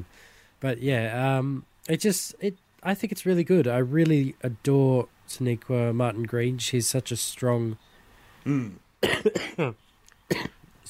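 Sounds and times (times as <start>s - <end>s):
speech: 0.1s - 10.6s
voiced throat noise: 8.4s - 10.6s
harsh raspy coughs: 8.5s - 10.6s.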